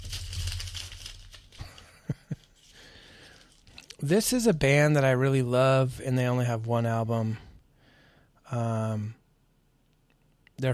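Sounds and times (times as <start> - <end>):
paper page turning with soft crinkling: 0.0 - 4.0
speech: 4.0 - 7.5, 8.5 - 9.2, 10.6 - 10.7.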